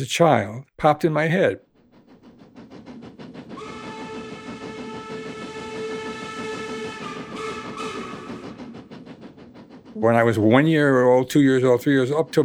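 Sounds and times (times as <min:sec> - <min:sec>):
speech: 0:00.0 - 0:01.7, 0:10.0 - 0:12.4
train rolling along rails: 0:01.2 - 0:12.4
train whistle: 0:03.6 - 0:08.8.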